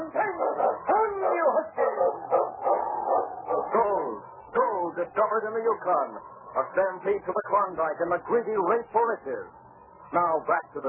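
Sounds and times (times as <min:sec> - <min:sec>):
pack of sled dogs barking and yipping: 0:00.0 - 0:04.0
speech: 0:05.3 - 0:10.8.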